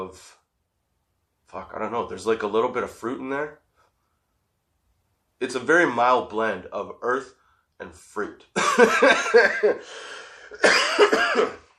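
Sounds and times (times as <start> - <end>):
speech: 0.1 - 0.4, 1.5 - 3.6, 5.4 - 11.6
laughter: 8.6 - 11.1
person dry harsh coughing: 9.6 - 11.7
person raspy breath: 9.8 - 10.6.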